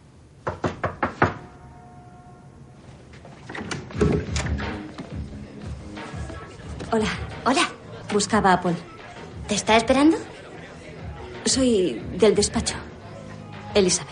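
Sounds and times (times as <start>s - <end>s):
knocking on a house door: 0.4s - 1.5s
speech: 6.9s - 8.9s, 9.5s - 10.3s, 11.4s - 12.8s, 13.8s - 14.1s.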